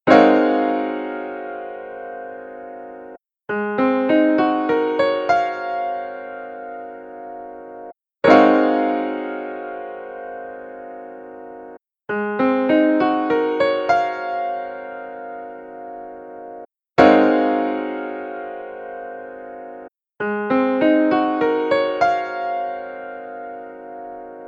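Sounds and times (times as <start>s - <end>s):
A-flat 13 piano chord: 0.1s - 3.2s, 3.8s - 24.4s.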